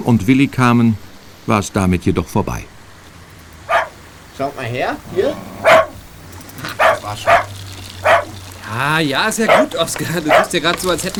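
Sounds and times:
speech: 0.0s - 2.7s, 4.4s - 5.8s, 7.1s - 7.4s, 8.7s - 11.1s
dog barking excitedly in greeting: 3.6s - 4.1s, 5.1s - 8.6s, 9.3s - 11.1s
dog whimpering eagerly: 3.7s - 4.0s, 5.1s - 6.0s, 6.8s - 8.4s, 9.5s - 9.7s.

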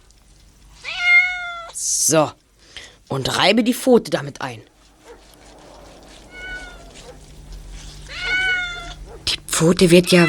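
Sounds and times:
faint low hum: 0.0s - 10.2s
cat meowing: 0.8s - 1.8s, 4.8s - 9.2s, 10.0s - 10.2s
speech: 2.1s - 2.4s, 3.1s - 4.7s, 9.6s - 10.2s.

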